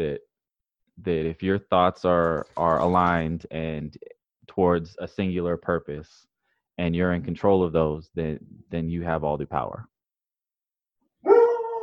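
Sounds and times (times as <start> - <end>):
speech: 0.0 - 0.3, 1.0 - 9.9
dog bark stretching into a howl: 11.2 - 11.8.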